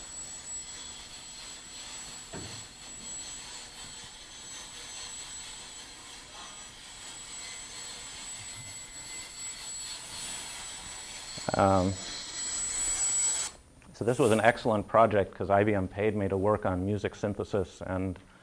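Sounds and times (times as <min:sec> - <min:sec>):
rotors of a Java-controlled quadrotor helicopter whirring: 0:00.0 - 0:13.6
speech: 0:11.5 - 0:12.2, 0:14.0 - 0:18.3.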